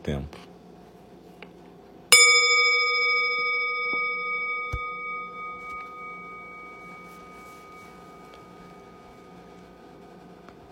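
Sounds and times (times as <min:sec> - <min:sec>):
speech: 0:00.0 - 0:00.4
meditation bell struck and ringing with a bright tone: 0:02.1 - 0:10.1.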